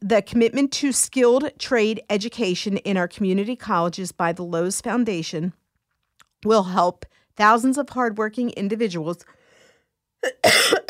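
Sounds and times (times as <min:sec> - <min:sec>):
speech: 0:00.1 - 0:05.6, 0:06.4 - 0:09.4, 0:10.2 - 0:10.8
radio host coughing on the air: 0:10.2 - 0:10.8.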